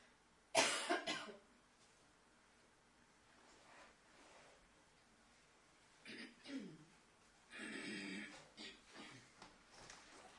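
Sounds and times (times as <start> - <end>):
person with a cold coughing: 0.6 - 1.4, 6.0 - 6.9, 7.5 - 9.3
throat clearing: 6.0 - 6.9, 7.5 - 9.3.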